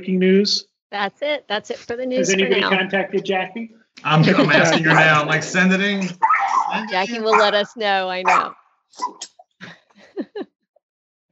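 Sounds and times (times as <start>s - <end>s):
speech: 0.0s - 9.8s
laughter: 2.2s - 7.9s, 9.6s - 10.4s
dog whimpering: 4.3s - 5.3s, 6.1s - 9.2s
nervous dog whining and yelping, frightened by weather: 6.2s - 7.5s.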